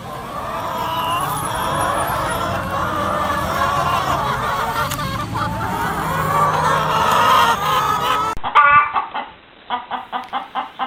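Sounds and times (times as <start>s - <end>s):
laughter: 0.0s - 8.4s
hen clucking: 0.0s - 10.8s.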